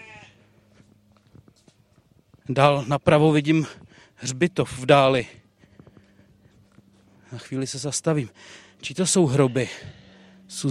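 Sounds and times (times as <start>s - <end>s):
sheep bleating in a small roadside pen: 0.0s - 0.6s, 9.2s - 10.4s
speech: 2.5s - 5.4s, 7.3s - 10.7s.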